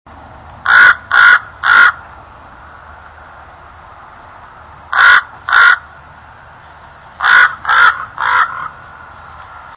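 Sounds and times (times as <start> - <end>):
common raven croaking: 0.6 - 2.1, 4.9 - 6.0, 7.2 - 9.0.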